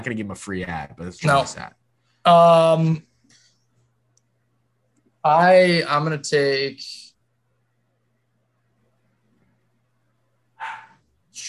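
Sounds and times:
speech: 0:00.0 - 0:03.1, 0:05.2 - 0:07.1
faint steady low hum: 0:00.0 - 0:11.4
dog barking: 0:10.6 - 0:11.0.

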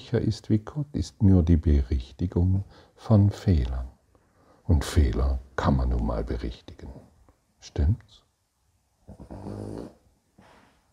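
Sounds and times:
speech: 0:00.1 - 0:03.9, 0:04.7 - 0:08.2, 0:09.1 - 0:10.0
dog grunting: 0:09.1 - 0:10.0.

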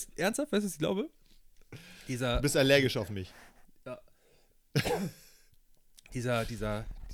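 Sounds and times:
speech: 0:00.0 - 0:04.1, 0:04.7 - 0:05.2, 0:06.1 - 0:07.0
person clearing throat with a rough cough-like burst: 0:04.8 - 0:05.3.

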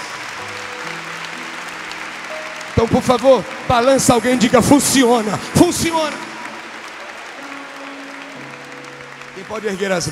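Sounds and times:
large crowd applauding in honour of Jesus Christ: 0:00.0 - 0:10.0
speech: 0:02.8 - 0:06.3, 0:09.5 - 0:10.0.

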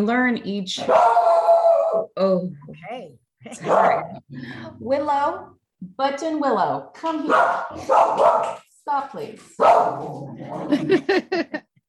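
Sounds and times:
speech: 0:00.0 - 0:11.7
Welsh corgi barking: 0:00.8 - 0:02.0, 0:03.6 - 0:04.1, 0:07.2 - 0:08.6, 0:09.6 - 0:10.1
laughter: 0:03.5 - 0:04.3, 0:10.5 - 0:11.7.

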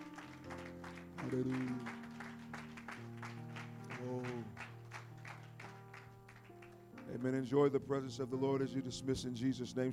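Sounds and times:
audience clapping at a church service: 0:00.0 - 0:07.3
speech: 0:01.2 - 0:02.0, 0:04.0 - 0:04.7, 0:07.1 - 0:09.9.

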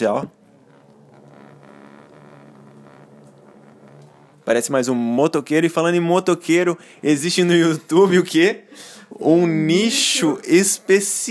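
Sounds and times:
speech: 0:00.0 - 0:00.4, 0:04.5 - 0:11.3
gas stove burner flame roaring: 0:00.0 - 0:08.4.

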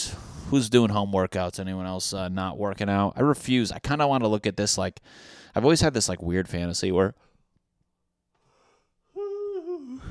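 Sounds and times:
speech: 0:00.5 - 0:07.3
person yawning: 0:09.2 - 0:10.0.

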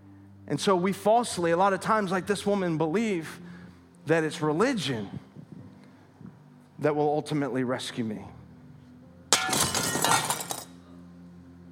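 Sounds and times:
speech: 0:00.5 - 0:05.2, 0:06.8 - 0:08.4
glass shattering: 0:09.3 - 0:10.8
glass shards tinkling and clattering: 0:09.4 - 0:10.8.

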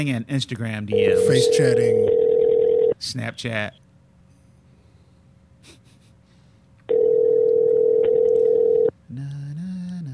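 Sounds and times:
speech: 0:00.0 - 0:02.2, 0:03.0 - 0:03.8
telephone ringback tone on an outgoing call: 0:01.0 - 0:03.0, 0:06.9 - 0:08.9.

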